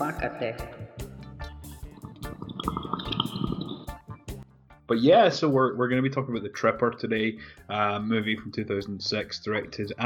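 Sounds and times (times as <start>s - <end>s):
speech: 0.0s - 1.0s, 4.9s - 10.0s
water bubbling through a bong during a hit: 1.6s - 4.4s.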